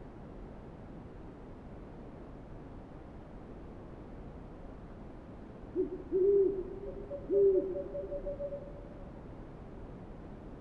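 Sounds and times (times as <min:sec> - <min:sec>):
low background hiss: 0:00.0 - 0:10.5
owl hooting: 0:05.8 - 0:09.0.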